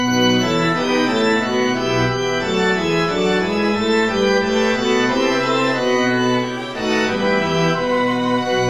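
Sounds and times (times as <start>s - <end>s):
strings: 0.2s - 8.6s
flute: 6.4s - 8.6s.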